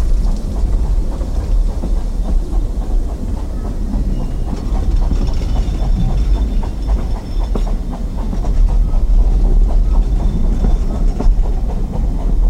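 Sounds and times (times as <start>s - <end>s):
diesel multiple unit train engine rumble on a heritage railway: 0.0s - 12.4s.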